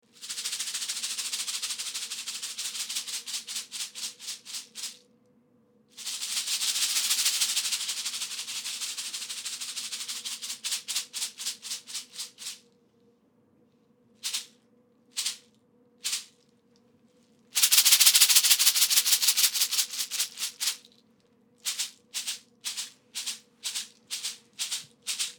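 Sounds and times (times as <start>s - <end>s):
butterfly cocoons with stones rattling: 0.2s - 5.0s, 6.0s - 12.7s, 14.2s - 14.6s, 15.2s - 16.4s, 17.5s - 21.0s, 21.6s - 25.3s.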